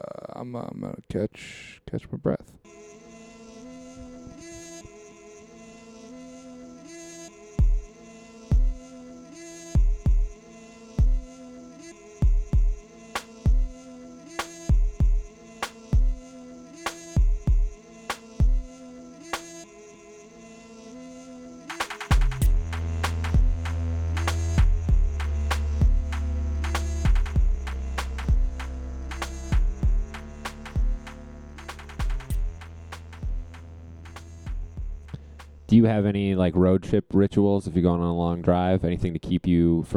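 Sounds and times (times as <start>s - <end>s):
speech: 0.4s - 2.9s, 35.8s - 39.9s
programmed beat track from a beat machine: 7.6s - 7.9s, 9.8s - 10.3s, 12.2s - 12.8s, 13.5s - 13.7s, 14.7s - 15.3s, 16.0s - 16.2s, 16.9s - 18.7s, 21.7s - 35.2s
loud sustained deep bass layer: 22.1s - 36.0s.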